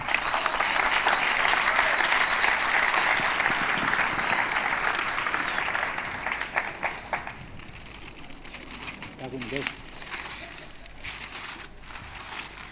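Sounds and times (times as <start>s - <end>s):
audience applause: 0.0s - 7.8s
faint rustling: 6.7s - 12.7s.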